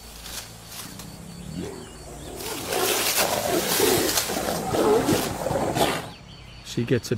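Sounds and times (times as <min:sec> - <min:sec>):
outdoor noise: 0:00.0 - 0:07.1
two young female Siberian tigers growling and moaning: 0:00.7 - 0:06.2.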